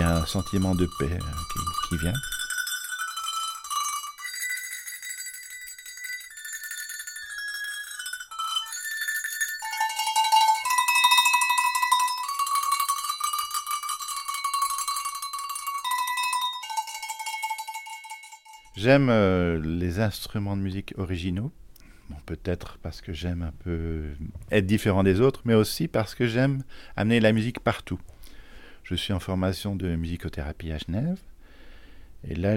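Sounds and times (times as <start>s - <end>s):
alpine cowbells clanging: 0.0s - 18.9s
speech: 0.2s - 2.4s, 18.8s - 28.1s, 28.8s - 31.3s, 32.2s - 32.5s.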